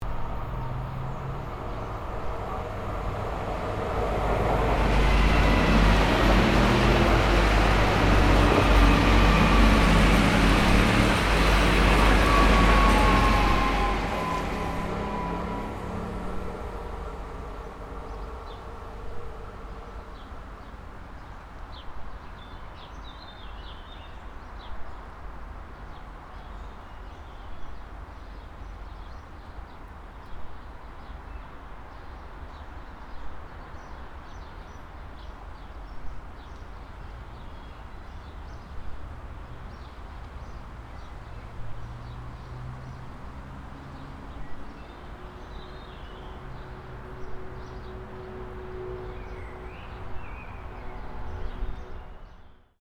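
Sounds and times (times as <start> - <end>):
garden train by a roadside: 0.0 - 21.1, 36.9 - 52.3.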